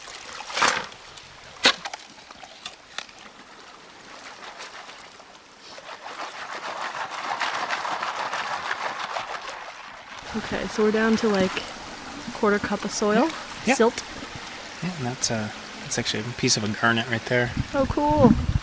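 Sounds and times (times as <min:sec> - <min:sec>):
flowing, sloshing river water: 0:00.0 - 0:18.6
shovel digging into wet ground at a river bend for gold: 0:00.4 - 0:01.0, 0:04.5 - 0:10.4
speech: 0:10.4 - 0:11.8, 0:12.4 - 0:14.1, 0:14.8 - 0:18.5.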